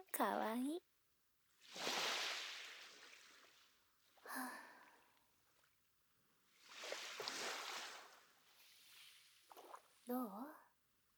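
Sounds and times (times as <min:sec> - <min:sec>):
speech: 0:00.0 - 0:00.9
gentle sea waves washing in and receding: 0:01.6 - 0:05.8, 0:06.4 - 0:10.1
water splash: 0:01.7 - 0:03.5, 0:06.7 - 0:08.2.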